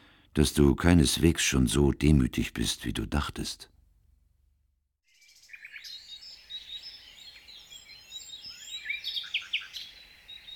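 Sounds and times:
speech: 0:00.4 - 0:03.7
dense chorus of birds chirping and twittering in the morning: 0:05.3 - 0:10.5.

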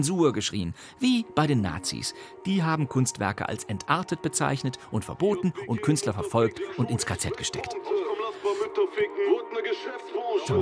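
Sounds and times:
speech: 0:00.0 - 0:10.6
song with sung melody playing from small phone speaker: 0:03.6 - 0:10.6.

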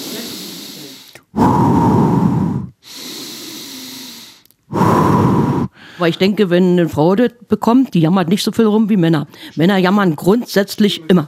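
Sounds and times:
heavy deliberate breathing: 0:00.0 - 0:06.2
speech: 0:06.0 - 0:11.2.

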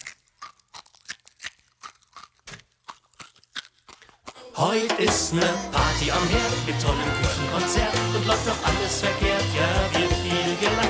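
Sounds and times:
crunching eggshell in scrambled eggs while chewing: 0:00.0 - 0:04.6
speech: 0:04.6 - 0:10.8.

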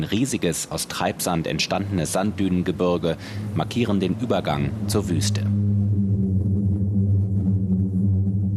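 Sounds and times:
speech: 0:00.0 - 0:05.6
deep steady humming drone with low throbbing tones: 0:01.7 - 0:08.5.

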